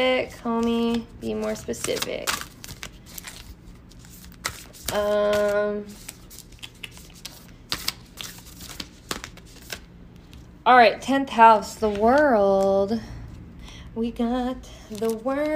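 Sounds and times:
speech: 0:00.0 - 0:02.5, 0:04.9 - 0:06.1, 0:10.6 - 0:13.2, 0:14.0 - 0:15.5
tarot cards shuffled: 0:00.4 - 0:10.5, 0:14.9 - 0:15.5.

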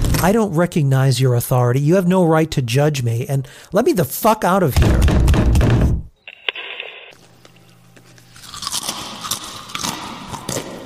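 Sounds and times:
speech: 0:00.2 - 0:05.6
someone chewing and crunching close to a microphone: 0:07.4 - 0:10.8.

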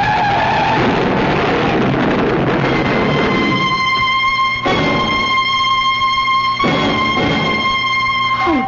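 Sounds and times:
car tires skidding with loud sustained screech: 0:00.0 - 0:05.4
rumbling car engine: 0:00.0 - 0:08.6.

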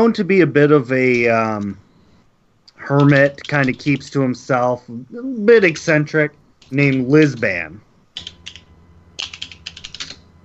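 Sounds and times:
speech: 0:00.0 - 0:01.8, 0:02.8 - 0:08.3
typing on a computer keyboard: 0:03.0 - 0:04.1, 0:08.2 - 0:08.6, 0:09.2 - 0:10.2.

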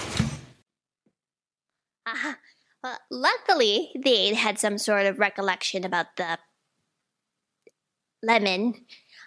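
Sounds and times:
door slamming shut: 0:00.0 - 0:00.6
speech: 0:02.1 - 0:06.5, 0:08.2 - 0:09.0.

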